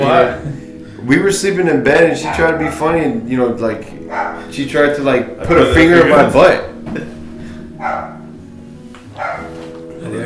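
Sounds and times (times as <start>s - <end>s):
speech: 0.0s - 7.1s
male dog barking: 2.2s - 2.9s, 4.0s - 4.5s, 7.8s - 8.3s, 9.2s - 9.6s.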